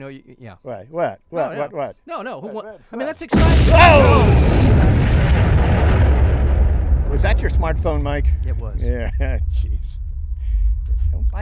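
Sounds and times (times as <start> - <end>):
speech: 0.0 - 5.5, 7.1 - 10.0, 11.2 - 11.4
explosion sound effect with deep sustained rumbling roar: 3.3 - 11.4.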